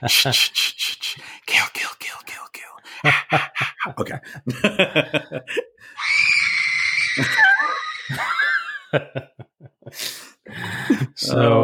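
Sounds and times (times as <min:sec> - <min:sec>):
laughter: 0:00.0 - 0:01.2, 0:03.0 - 0:05.8, 0:07.1 - 0:11.2
speech: 0:00.0 - 0:06.1, 0:07.2 - 0:07.5, 0:08.1 - 0:11.6
woman screaming in terror: 0:06.0 - 0:08.2.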